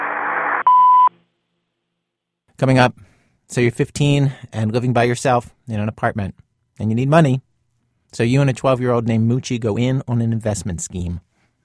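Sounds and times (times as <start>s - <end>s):
short burst of hissy static: 0.0s - 0.7s
loud steady answering machine beep: 0.6s - 1.1s
speech: 2.6s - 7.5s, 8.1s - 11.3s.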